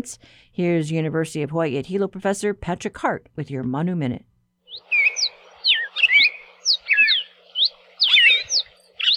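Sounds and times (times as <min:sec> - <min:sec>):
speech: 0:00.0 - 0:04.3
red-crested and yellow-billed cardinals singing: 0:04.7 - 0:09.1.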